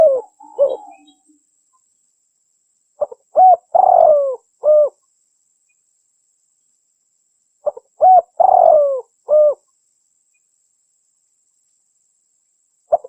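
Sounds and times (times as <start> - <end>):
spotted dove cooing: 0.0 - 1.2, 3.0 - 5.0, 7.6 - 9.6.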